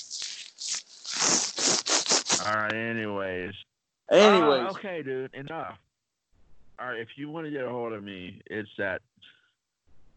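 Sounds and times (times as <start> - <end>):
beard rustling and scratching against a microphone: 0.0 - 2.5
speech: 2.4 - 5.9, 6.8 - 9.3.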